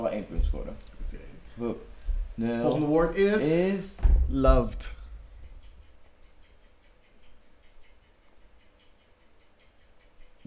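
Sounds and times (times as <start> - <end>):
speech: 0.0 - 5.0
low hum: 0.0 - 10.4
loud clock ticking: 4.5 - 10.4.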